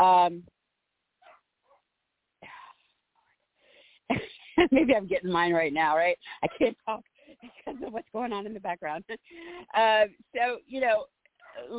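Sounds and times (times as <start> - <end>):
speech: 0.0 - 0.6, 4.1 - 11.7
dog barking at a cat: 1.2 - 1.8.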